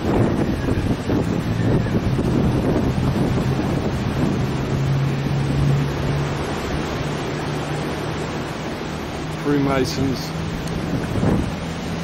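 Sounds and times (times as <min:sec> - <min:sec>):
sea waves churning and crashing at Boulogne-sur-Mer in bad weather: 0:00.0 - 0:12.0
strong gusty wind roaring into the microphone: 0:00.0 - 0:12.0
speech: 0:09.6 - 0:11.1.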